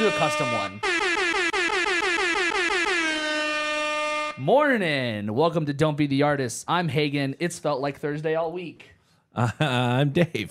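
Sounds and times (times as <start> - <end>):
speech: 0.0 - 1.0, 4.4 - 10.4
loud brassy air horn blasts: 0.0 - 4.5.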